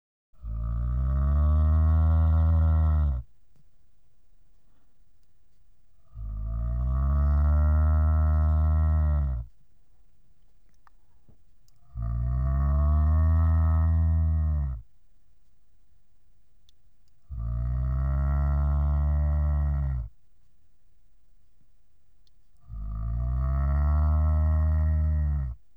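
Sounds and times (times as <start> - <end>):
cow: 0.4 - 3.3, 6.0 - 9.6, 11.7 - 14.9, 17.2 - 20.2, 22.6 - 25.6.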